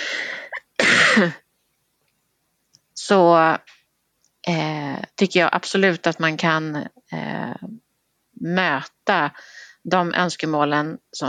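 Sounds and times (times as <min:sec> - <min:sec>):
person coughing: 0:00.4 - 0:01.4
speech: 0:01.2 - 0:01.4, 0:03.1 - 0:03.8, 0:04.4 - 0:07.8, 0:08.4 - 0:11.2.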